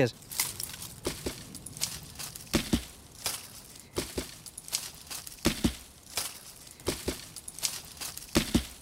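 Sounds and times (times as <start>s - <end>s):
speech: 0.0s - 0.3s
crisp leafy rustle: 0.0s - 8.8s
branch striking tree bark and leaves: 2.2s - 8.8s.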